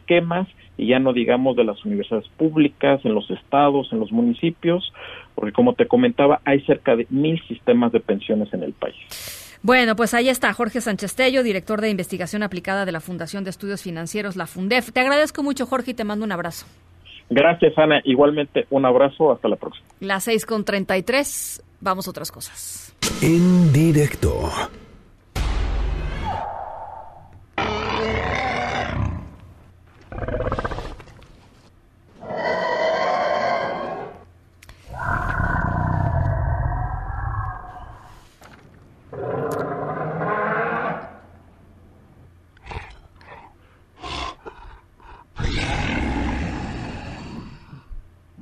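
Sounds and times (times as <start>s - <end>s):
speech: 0.1s - 24.8s
reconstructed dinosaur roars and growling bellows: 26.2s - 29.4s, 30.1s - 31.0s, 32.2s - 34.2s, 34.9s - 38.1s, 39.1s - 41.2s, 44.0s - 47.9s.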